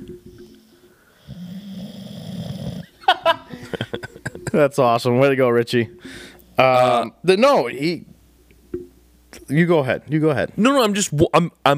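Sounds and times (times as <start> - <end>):
soft breath: 0.3 - 1.5, 6.0 - 6.5
sleeping man snoring against the microphone: 1.2 - 3.0
laughter: 3.0 - 4.7
speech: 4.5 - 8.1, 9.5 - 11.7.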